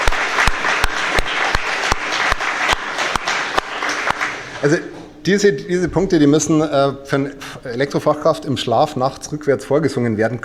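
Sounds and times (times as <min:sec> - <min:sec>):
sharp claps at a brisk rhythm: 0:00.0 - 0:04.6
crowd applauding loudly: 0:00.0 - 0:04.7
speech: 0:04.6 - 0:10.4.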